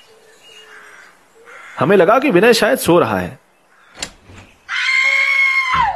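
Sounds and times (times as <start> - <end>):
speech: 1.8 - 3.4
woman screaming: 4.7 - 5.9.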